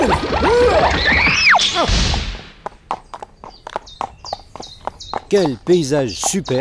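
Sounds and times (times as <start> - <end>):
ridden horse whinnying loudly: 0.0 - 1.9
horse hooves clip-clopping in sharp knocks: 2.1 - 6.5
speech: 5.3 - 6.5.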